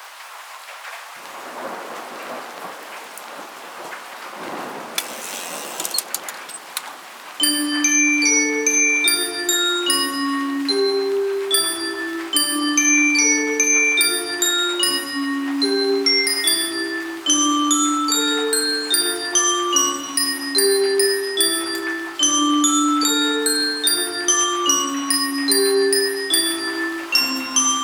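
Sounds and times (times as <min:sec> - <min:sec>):
gloomy music box: 0:07.4 - 0:27.8.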